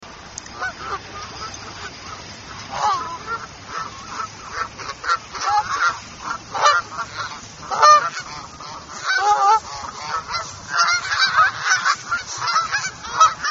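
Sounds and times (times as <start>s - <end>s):
several geese honking at an arts center: 0.4s - 13.4s.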